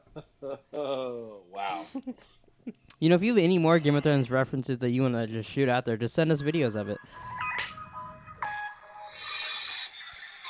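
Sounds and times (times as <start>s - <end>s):
speech: 0.2s - 7.3s
phone ringing with a bright electronic ringtone: 6.4s - 9.6s.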